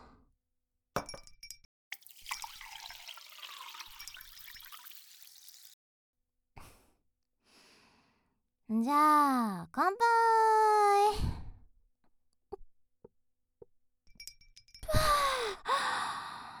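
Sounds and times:
glass clinking: 1.0s - 5.5s, 14.1s - 14.9s
ice or glassware clinking: 1.0s - 5.7s
whisky poured into a glass: 2.0s - 5.8s
speech: 8.8s - 11.2s.

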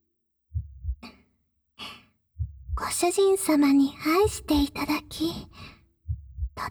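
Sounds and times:
heartbeat heard through chest: 0.5s - 1.2s, 2.4s - 6.6s
speech: 3.0s - 5.7s
soft airy breaths: 4.0s - 5.9s.

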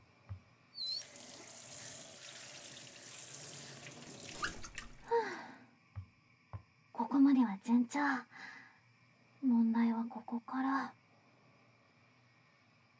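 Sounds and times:
running tap water rinsing horse mackerel: 0.8s - 5.1s
speech: 7.3s - 8.5s, 9.7s - 11.0s.

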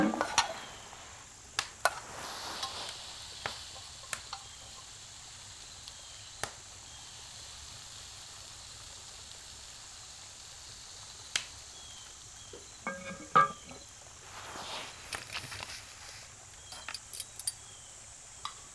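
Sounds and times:
soft scraping and rustling while food is served onto plates: 0.0s - 4.2s, 12.8s - 17.6s
utensils clinking against dishes while food is served onto plates: 12.8s - 13.8s, 16.7s - 17.6s.

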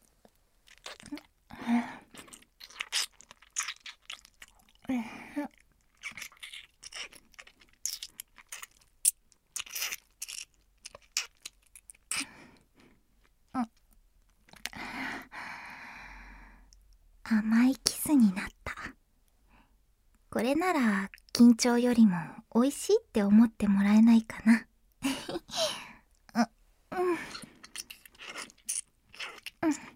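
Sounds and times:
chocolate being bitten and chewed: 0.1s - 1.5s, 2.0s - 12.7s, 13.2s - 14.7s, 27.3s - 29.9s
breaths and sighs: 1.5s - 2.4s, 4.8s - 5.5s, 12.1s - 13.1s, 14.6s - 16.8s, 25.1s - 27.8s
speech: 20.4s - 24.7s.

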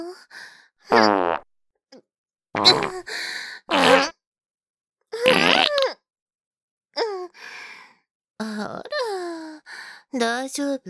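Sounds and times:
farts: 0.9s - 1.5s, 2.6s - 3.0s, 3.7s - 4.1s, 5.2s - 5.9s
speech: 10.5s - 10.8s.

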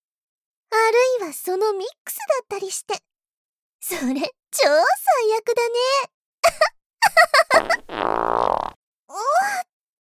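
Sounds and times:
speech: 1.2s - 3.1s, 3.8s - 9.7s
long buzzing fart: 7.6s - 8.8s.

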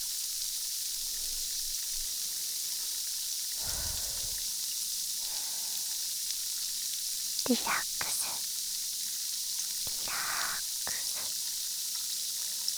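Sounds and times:
carbonated water poured and fizzing: 1.0s - 12.7s
speech: 7.5s - 8.0s.

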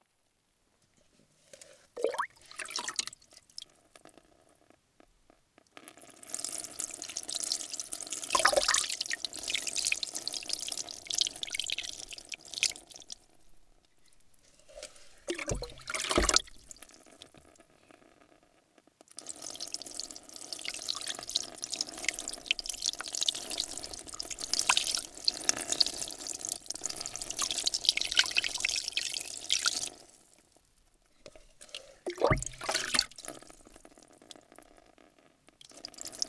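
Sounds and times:
water pouring and splashing as hair is rinsed during a salon hair wash: 2.0s - 3.6s, 6.3s - 13.3s, 14.1s - 17.3s, 19.2s - 30.4s, 31.2s - 34.4s.

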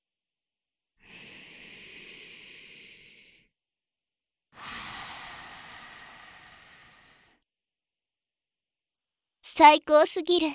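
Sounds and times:
deep breaths: 1.0s - 3.5s, 4.6s - 7.4s
speech: 9.5s - 10.5s.

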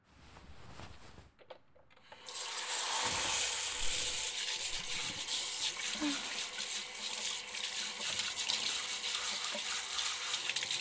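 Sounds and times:
hot water gushing from a tap during a hair wash: 2.2s - 10.7s.

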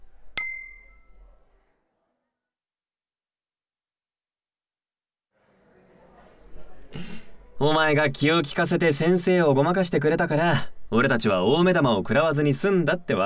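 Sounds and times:
glasses of alcohol clinking in a toast: 0.0s - 1.4s
soft murmur of noise: 5.6s - 13.2s
speech: 7.6s - 13.2s.

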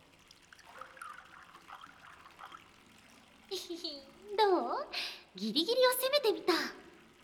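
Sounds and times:
warm sake pouring into a small ochoko cup during a bath: 0.0s - 3.5s
speech: 3.7s - 6.8s.

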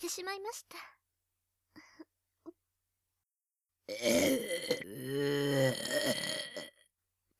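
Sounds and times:
speech: 0.1s - 1.0s, 3.9s - 6.3s
woman burping: 3.9s - 6.7s.

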